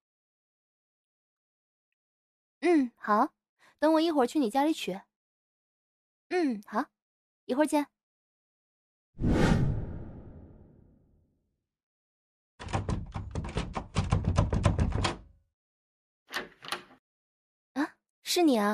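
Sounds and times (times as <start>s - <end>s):
speech: 2.6s - 5.1s, 6.3s - 8.0s, 9.2s - 9.5s, 18.3s - 18.7s
key rattling and jiggling in a door lock: 12.6s - 15.3s, 16.3s - 17.0s
sharp knocks on a door: 12.6s - 15.3s.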